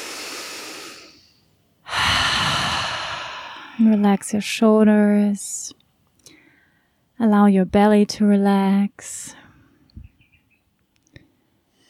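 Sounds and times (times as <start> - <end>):
deep breathing through an open mouth: 0.0 - 4.0
speech: 3.8 - 5.8, 7.2 - 9.4.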